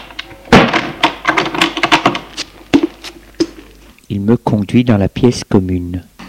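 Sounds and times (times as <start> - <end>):
door swinging shut with solid thuds: 0.5 - 1.6
speech: 4.1 - 6.1.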